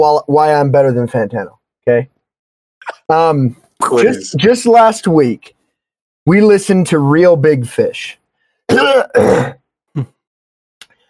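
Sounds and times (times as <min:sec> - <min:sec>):
speech: 0:00.0 - 0:02.2, 0:02.8 - 0:05.6, 0:06.3 - 0:10.2
person clearing throat: 0:08.7 - 0:10.2.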